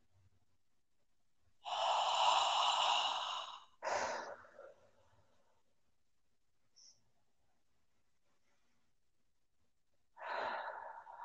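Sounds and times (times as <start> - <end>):
deep slow breath drawn in during a guided relaxation exercise: 1.6 - 5.0, 10.2 - 11.2.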